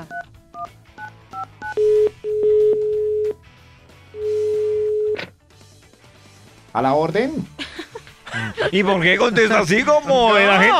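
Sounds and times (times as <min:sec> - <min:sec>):
telephone keypad two-pitch beeps: 0:00.1 - 0:03.4, 0:04.2 - 0:05.2
speech: 0:06.8 - 0:07.5, 0:08.4 - 0:10.7
laughter: 0:07.6 - 0:09.3.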